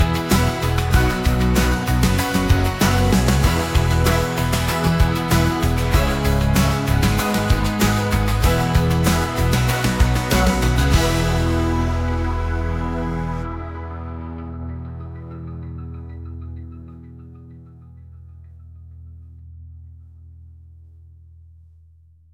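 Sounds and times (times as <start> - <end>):
logo pop: 0.0 - 14.8.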